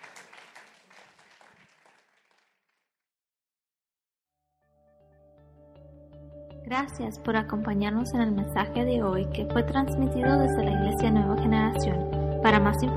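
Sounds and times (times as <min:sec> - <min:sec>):
audience applause: 0:00.0 - 0:02.6
speech: 0:06.7 - 0:12.9.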